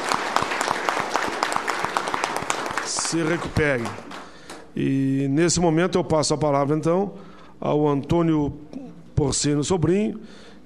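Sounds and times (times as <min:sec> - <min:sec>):
audience applause at a trade union gathering: 0:00.0 - 0:04.7
speech: 0:03.1 - 0:04.1, 0:04.8 - 0:10.5.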